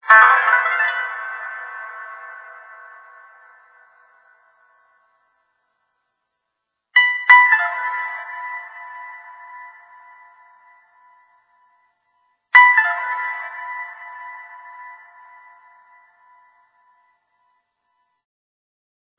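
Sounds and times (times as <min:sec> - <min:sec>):
long chillout music loop: 0:00.0 - 0:04.3, 0:07.0 - 0:11.1, 0:12.6 - 0:16.4.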